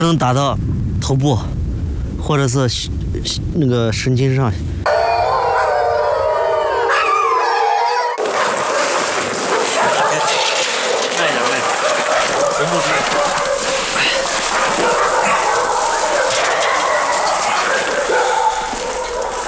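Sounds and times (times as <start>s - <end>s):
speech: 0.0s - 1.6s, 2.2s - 5.2s
young wolves caught by herders howling: 4.9s - 19.4s.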